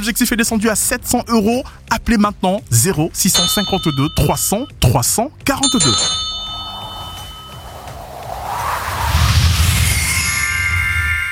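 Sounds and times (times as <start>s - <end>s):
speech: 0.0s - 6.3s
small bell ringing: 3.3s - 4.7s, 5.6s - 8.2s
continuous rushing whoosh: 6.0s - 11.3s.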